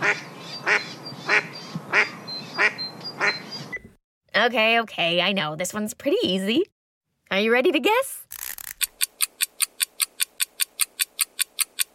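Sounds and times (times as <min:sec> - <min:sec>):
mallard hen quacking to her chicks: 0:00.0 - 0:03.4
speech: 0:04.4 - 0:06.7, 0:07.3 - 0:08.3.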